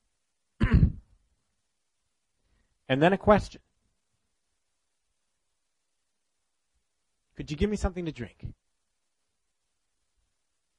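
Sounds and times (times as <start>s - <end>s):
throat clearing: 0.6s - 1.1s
speech: 2.9s - 3.7s, 7.4s - 8.6s.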